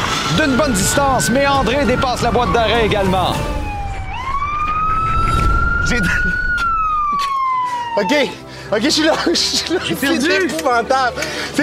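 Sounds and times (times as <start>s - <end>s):
police car siren wailing: 0.0s - 8.5s
speech: 0.3s - 3.6s, 5.9s - 6.4s, 8.0s - 11.6s
low rumble: 0.6s - 7.2s
laughter: 6.1s - 7.9s, 8.9s - 10.7s.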